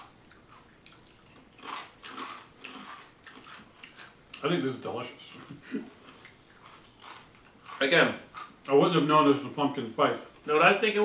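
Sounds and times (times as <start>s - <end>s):
breakfast cereal being chewed: 0.3s - 5.5s, 6.1s - 9.4s
speech: 4.4s - 6.0s, 7.8s - 11.0s.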